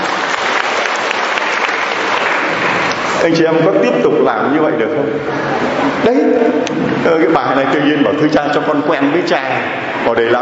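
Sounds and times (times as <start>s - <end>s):
crowd applauding: 0.0s - 3.3s
speech: 3.2s - 10.3s.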